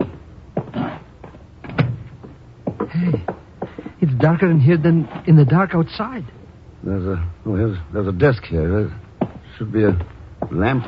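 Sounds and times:
door opening with creaks and knocks: 1.6s - 2.3s
speech: 4.0s - 9.0s, 9.6s - 10.8s.

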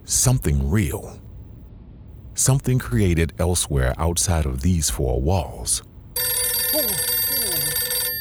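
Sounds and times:
speech: 0.1s - 1.2s, 2.4s - 6.3s
telephone ringing with a bright electronic tone: 6.2s - 8.2s.

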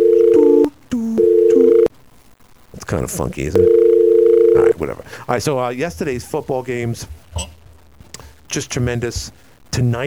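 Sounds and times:
loud telephone dial tone: 0.0s - 1.9s, 3.6s - 4.7s
speech: 2.9s - 3.8s, 4.8s - 7.5s, 8.5s - 10.0s.

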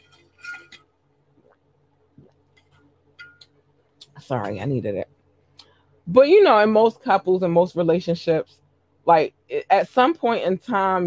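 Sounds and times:
low steady hum: 0.0s - 11.0s
glass clinks and taps while sipping water: 2.6s - 3.6s
speech: 4.3s - 5.1s, 6.1s - 11.0s.

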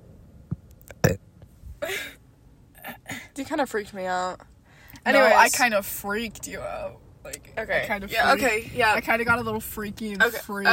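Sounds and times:
short burp: 0.9s - 1.2s
speech: 3.4s - 10.7s.

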